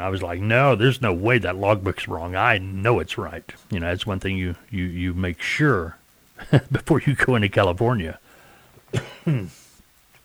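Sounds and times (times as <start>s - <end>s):
speech: 0.0s - 8.2s, 8.9s - 9.6s
person coughing: 8.9s - 9.8s.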